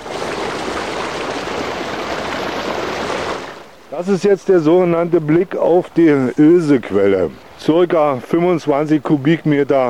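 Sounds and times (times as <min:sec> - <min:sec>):
water gushing from a pipe into a pit: 0:00.0 - 0:03.6
speech: 0:04.0 - 0:09.8.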